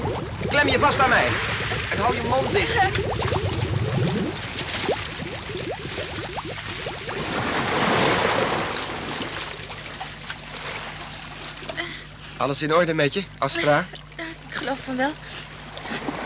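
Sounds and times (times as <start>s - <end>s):
water splashing and flowing: 0.0s - 12.2s, 13.7s - 16.2s
speech: 0.5s - 3.5s, 12.4s - 14.0s, 14.7s - 15.3s.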